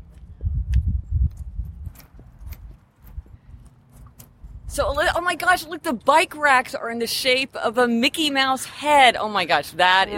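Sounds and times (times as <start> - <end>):
footsteps walking across hard ground outdoors: 0.0 - 4.7
speech: 4.8 - 10.1.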